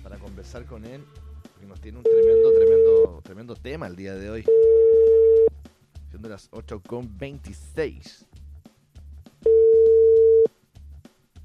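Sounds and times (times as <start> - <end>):
speech: 0.4 - 5.2, 6.2 - 8.3
telephone beep as a call is dialed: 2.1 - 3.1, 4.5 - 5.5, 9.5 - 10.5.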